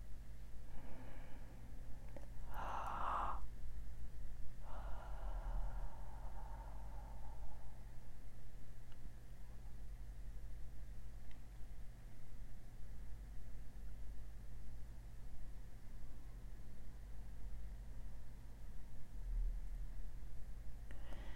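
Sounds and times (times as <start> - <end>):
low steady hum: 0.0 - 21.3
person breathing out with an open haaa sound: 0.7 - 1.8, 2.5 - 3.5, 4.6 - 8.1, 20.9 - 21.3.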